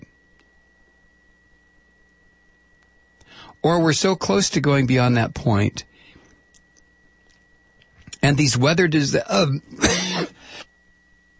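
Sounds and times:
speech: 0:03.6 - 0:05.9, 0:08.2 - 0:10.3
person with a persistent cough coughing: 0:09.7 - 0:10.5.

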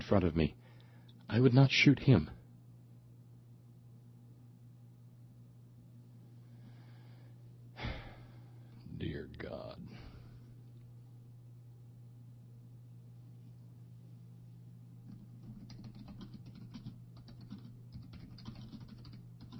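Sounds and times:
steady low hum: 0:00.0 - 0:19.5
speech: 0:00.1 - 0:00.7, 0:01.3 - 0:02.4
typing on a computer keyboard: 0:15.1 - 0:19.5.

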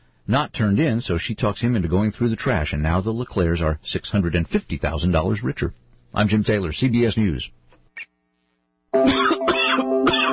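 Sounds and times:
speech: 0:00.3 - 0:08.1, 0:09.0 - 0:09.3
person coughing harshly with chesty hacking: 0:09.0 - 0:10.3.

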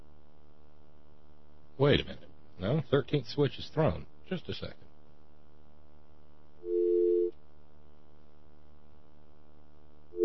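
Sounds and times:
speech: 0:01.8 - 0:04.8
faint buzzy telephone line tone during a phone check: 0:06.6 - 0:07.4.

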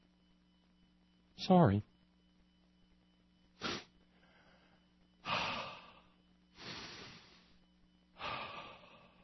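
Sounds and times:
speech: 0:01.4 - 0:01.9
deep audible breaths close to the microphone: 0:03.6 - 0:09.2.

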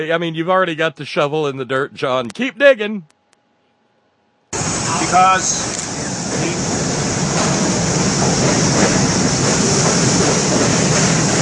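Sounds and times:
speech: 0:00.0 - 0:03.2, 0:05.1 - 0:06.6
subway train rumbling past: 0:04.6 - 0:11.4.

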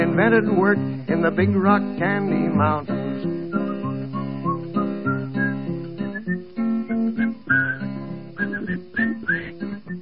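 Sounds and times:
speech: 0:00.2 - 0:03.0
person whistling a lilting melody: 0:03.4 - 0:09.9.

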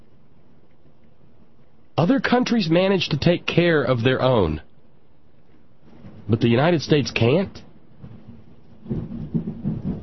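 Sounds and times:
faint hiss of rain: 0:00.0 - 0:10.0
speech: 0:02.0 - 0:04.7, 0:06.3 - 0:07.7
low thunder rumbling: 0:07.9 - 0:10.0.

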